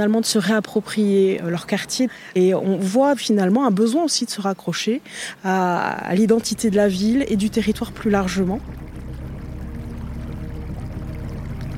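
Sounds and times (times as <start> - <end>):
speech: 0.0 - 8.9
flowing river water rushing and gurgling: 6.4 - 11.7.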